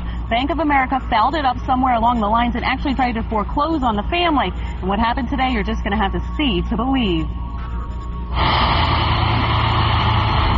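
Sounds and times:
truck engine running: 0:00.0 - 0:10.5
speech: 0:00.3 - 0:07.4, 0:08.3 - 0:08.8.

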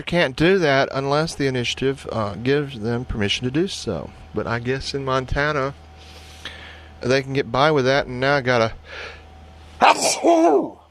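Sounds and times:
speech: 0:00.0 - 0:05.8, 0:07.0 - 0:09.2, 0:09.8 - 0:10.8
person sneezing: 0:09.8 - 0:10.6.

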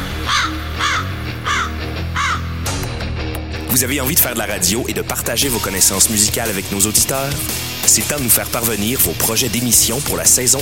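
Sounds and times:
bird cawing: 0:00.0 - 0:02.8
speech: 0:03.7 - 0:10.6.

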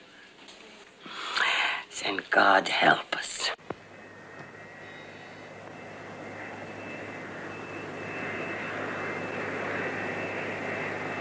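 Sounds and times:
speech: 0:02.1 - 0:03.6
airplane engine roar with faint whine overhead: 0:03.6 - 0:11.1.

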